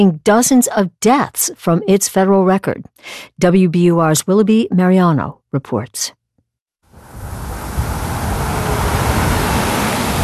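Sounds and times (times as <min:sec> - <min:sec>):
speech: 0:00.0 - 0:06.2
passing street traffic roar: 0:06.9 - 0:10.2.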